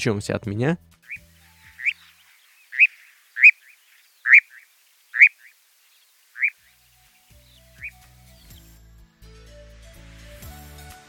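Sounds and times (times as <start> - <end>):
speech: 0.0 - 1.2
nightjar calling in sharp notes: 0.9 - 8.8.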